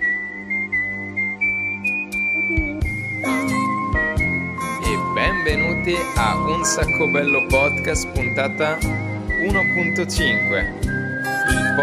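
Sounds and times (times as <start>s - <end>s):
whistled theme tune melody: 0.0s - 11.8s
bright busy music with tinkling accents: 2.4s - 11.8s
speech: 5.9s - 11.8s.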